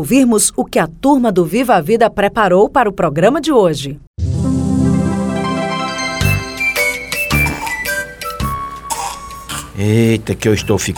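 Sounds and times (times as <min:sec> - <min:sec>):
speech: 0:00.0 - 0:04.1, 0:09.8 - 0:10.9
bright tinkling musical jingle: 0:05.4 - 0:08.4
child coughing: 0:07.3 - 0:08.0, 0:08.9 - 0:09.8.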